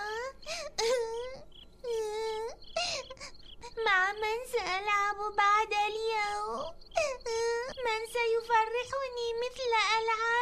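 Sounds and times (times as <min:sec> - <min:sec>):
girl crying in wavering wails: 0:00.0 - 0:04.0, 0:06.2 - 0:08.0
girl gasping between sobs: 0:02.7 - 0:03.4, 0:07.0 - 0:07.7
speech: 0:04.1 - 0:06.8, 0:07.9 - 0:10.4.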